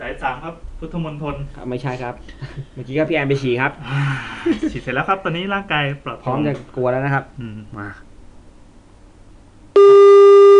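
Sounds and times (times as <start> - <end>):
speech: 0.4 - 8.1
telephone call tone of a call-in line: 9.8 - 10.5.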